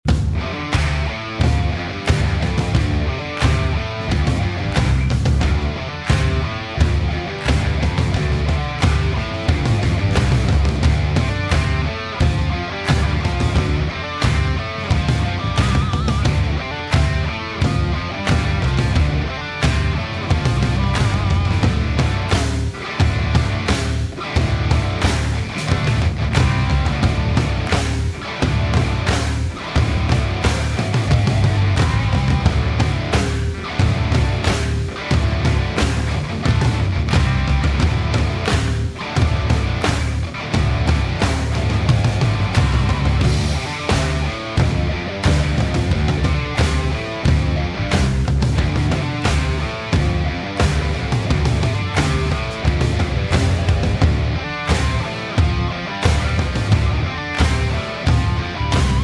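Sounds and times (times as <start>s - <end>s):
instrumental stadium rock riff: 0.0s - 59.0s.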